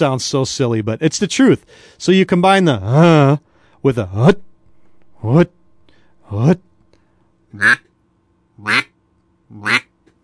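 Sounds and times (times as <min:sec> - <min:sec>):
speech: 0:00.0 - 0:04.5, 0:05.2 - 0:05.6, 0:06.3 - 0:06.7, 0:07.5 - 0:07.9, 0:08.6 - 0:08.9, 0:09.5 - 0:09.8
basic duck call quacks blown from the belly: 0:07.6 - 0:07.8, 0:08.6 - 0:09.0, 0:09.6 - 0:09.9.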